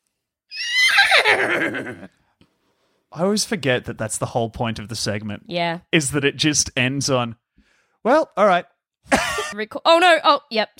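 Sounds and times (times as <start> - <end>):
horse whinny dropping into a shuddering nicker: 0.5 - 2.1
speech: 1.3 - 2.2, 3.1 - 7.4, 8.0 - 10.7.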